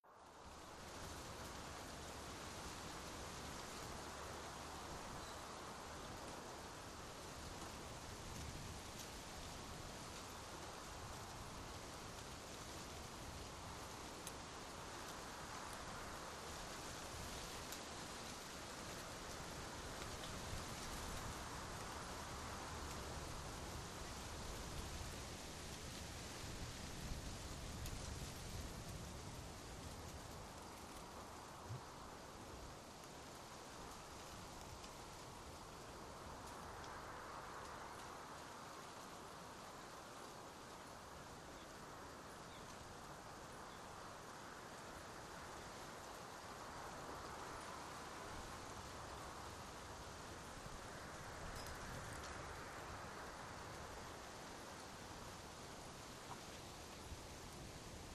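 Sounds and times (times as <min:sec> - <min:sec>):
light steady dry summer forest wind in trees: 0:00.0 - 0:58.1.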